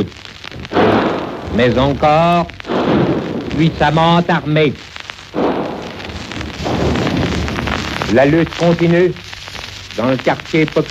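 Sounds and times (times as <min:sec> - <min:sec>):
speech: 0:00.0 - 0:00.3, 0:01.5 - 0:04.9, 0:08.1 - 0:09.2, 0:10.0 - 0:10.8
constant hiss of noise: 0:00.0 - 0:10.8
enemy cannon blasts with rumbling roar: 0:00.6 - 0:04.2, 0:05.2 - 0:08.8
carbine shots cracking: 0:00.7 - 0:02.0, 0:02.6 - 0:04.0, 0:05.3 - 0:08.3.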